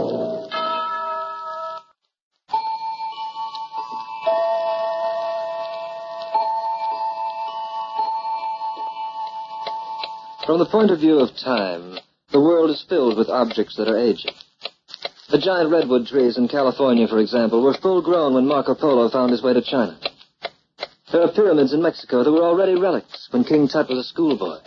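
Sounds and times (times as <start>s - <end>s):
sustained ringing chime-like tones: 0.2s - 1.9s, 2.5s - 10.4s
clock ticking: 4.2s - 24.6s
speech: 10.5s - 14.4s, 15.3s - 20.0s, 21.1s - 24.6s.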